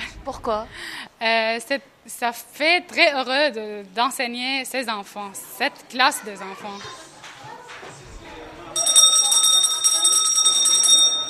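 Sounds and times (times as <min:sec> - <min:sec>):
speech: 0:00.2 - 0:07.0
faint voices: 0:05.0 - 0:11.2
electric school bell ringing for recess: 0:08.8 - 0:11.2.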